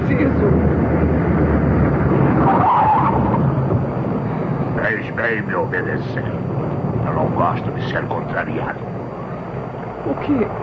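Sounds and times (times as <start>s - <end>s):
steady car engine rumble: 0.0s - 10.6s
car braking hard with tires skidding and squealing against the road: 2.1s - 3.6s
speech: 5.6s - 6.4s, 7.4s - 9.0s, 10.0s - 10.6s.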